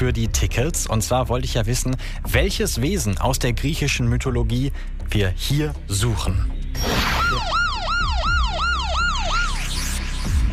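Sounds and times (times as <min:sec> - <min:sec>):
speech: 0:00.0 - 0:07.1
siren cycling up and down: 0:06.8 - 0:10.5.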